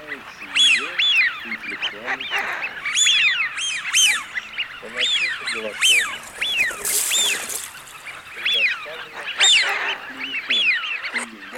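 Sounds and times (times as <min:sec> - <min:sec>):
Eurasian wigeon whistled calls: 0:00.0 - 0:11.5
soft chatter: 0:00.0 - 0:11.5
rustling noise: 0:05.2 - 0:09.0.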